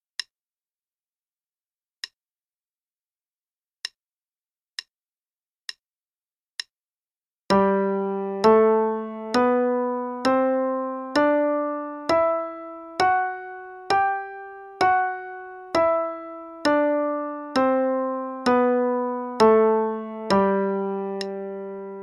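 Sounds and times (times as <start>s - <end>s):
G major scale played: 7.5s - 22.0s.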